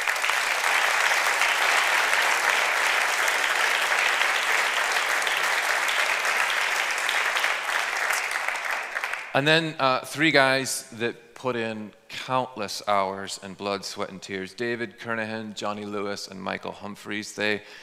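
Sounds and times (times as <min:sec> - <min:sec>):
sustained applause from a sizable audience for the board of directors: 0:00.0 - 0:09.4
speech: 0:09.4 - 0:17.8.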